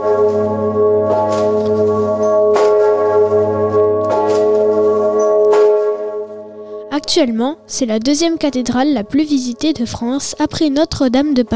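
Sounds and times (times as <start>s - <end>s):
large deep cathedral bell tolling: 0.0s - 10.0s
speech: 7.1s - 11.5s.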